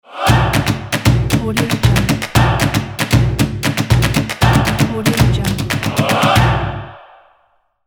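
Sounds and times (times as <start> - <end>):
choir logo jingle: 0.0 - 3.0, 4.2 - 7.2
foot stomps: 0.3 - 6.6
hand claps: 0.3 - 6.6.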